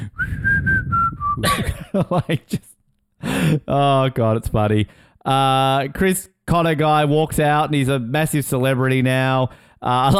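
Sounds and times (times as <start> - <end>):
noisy breath: 0.0 - 1.2, 3.2 - 3.7, 4.9 - 5.2, 9.5 - 9.8
person whistling: 0.0 - 1.6
speech: 1.4 - 2.7, 3.4 - 10.1.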